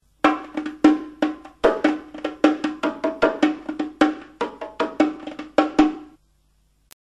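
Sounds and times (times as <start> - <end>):
velocity-varied bongos: 0.0 - 6.2.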